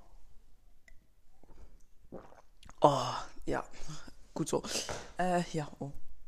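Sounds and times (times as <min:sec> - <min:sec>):
soft sips and wet swallow of water: 0:00.8 - 0:05.1
speech: 0:02.8 - 0:06.0.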